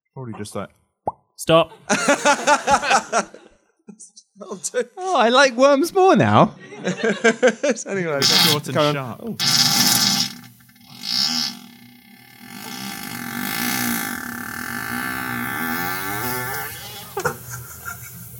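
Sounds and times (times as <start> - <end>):
speech: 0.2 - 0.8, 1.4 - 9.9
laughter: 1.7 - 3.7, 6.6 - 8.0, 16.9 - 18.3
amplified recorded fart with whiny wavering drone: 8.2 - 17.5.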